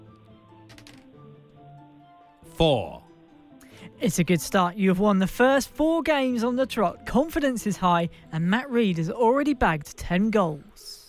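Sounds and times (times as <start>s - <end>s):
dice rolled for a tabletop football-management game: 0.7s - 1.0s
speech: 2.6s - 3.0s, 4.0s - 11.0s.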